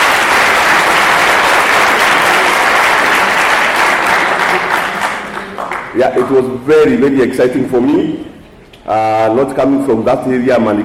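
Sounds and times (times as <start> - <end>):
crowd applauding: 0.0 - 6.0
speech: 6.0 - 10.8.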